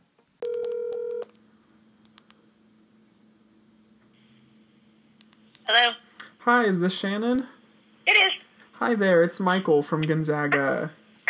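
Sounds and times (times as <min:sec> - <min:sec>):
steady electronic telephone tone as a call is placed: 0:00.4 - 0:01.3
speech: 0:05.7 - 0:07.6, 0:08.8 - 0:11.0.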